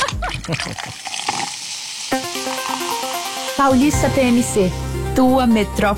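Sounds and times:
tonic water being cracked open: 0.0 - 3.6
tonic water fizzing with a crackling hiss: 0.0 - 3.9
speech: 0.5 - 1.3, 3.6 - 5.9.

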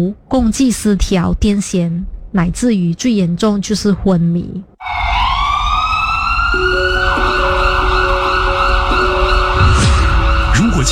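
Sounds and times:
speech: 0.0 - 4.7, 6.5 - 6.9
ambulance siren wailing: 4.8 - 10.9.

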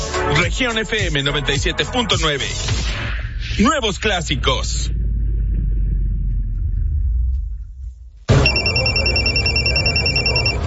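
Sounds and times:
speech: 0.3 - 3.0, 3.6 - 5.0
low rumble: 2.7 - 10.6
telephone ringing: 8.4 - 10.6.

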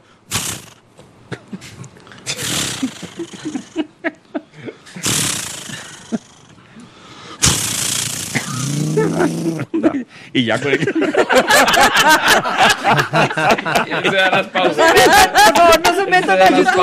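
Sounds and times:
man's voice imitating a chainsaw starting up and revving: 0.3 - 0.8, 2.3 - 3.8, 5.0 - 6.6, 7.4 - 9.7
laughter: 2.7 - 5.0, 8.8 - 16.8
speech: 10.3 - 16.8.

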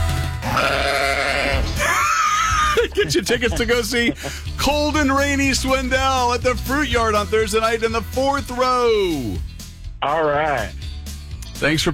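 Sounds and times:
goat bleating: 0.4 - 2.7
laughter: 1.8 - 4.7
speech: 2.9 - 10.8, 11.6 - 11.9.

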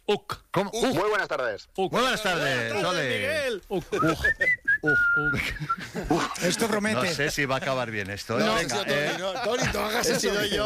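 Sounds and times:
speech: 0.1 - 10.6
person whistling short clear notes: 4.0 - 5.9.

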